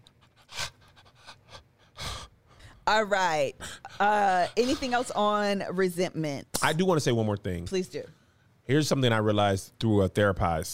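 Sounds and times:
person panting heavily: 0.3 - 2.8, 3.6 - 5.1
speech: 2.9 - 10.7.

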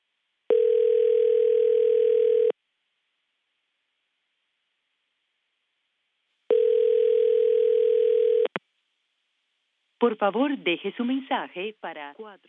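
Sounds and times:
ringback tones of an outgoing phone call: 0.5 - 2.5, 6.5 - 8.5
speech: 10.0 - 12.4.

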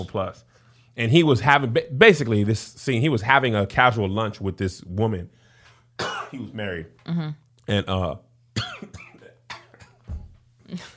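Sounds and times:
speech: 0.0 - 5.4, 6.0 - 8.3, 10.7 - 10.9
person clearing throat: 6.0 - 6.5, 8.6 - 10.1.

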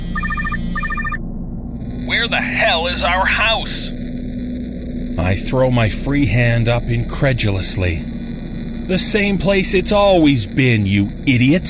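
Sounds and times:
phone ringing with warbling electronic trills: 0.0 - 1.2
low hum: 0.0 - 11.6
speech: 2.1 - 4.0, 5.2 - 8.1, 8.9 - 11.6.

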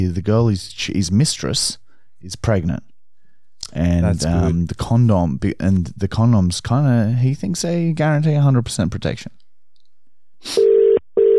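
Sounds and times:
speech: 0.0 - 2.9, 3.7 - 9.4, 10.4 - 10.7
phone line ringing out: 10.6 - 11.3.

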